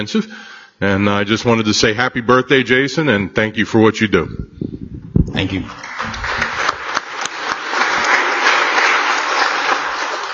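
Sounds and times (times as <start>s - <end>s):
speech: 0.0s - 5.9s
sustained applause of many hands in a legislative chamber: 5.5s - 10.3s.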